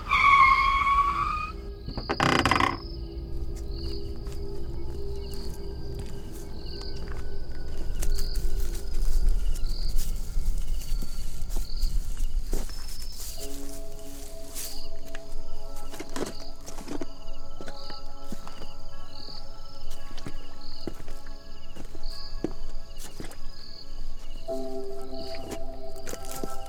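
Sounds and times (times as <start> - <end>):
sharp shrill car tire squeal: 0.0 - 2.8
insects chirping: 0.0 - 26.6
footsteps crunching and rustling through dry brush: 2.8 - 26.6.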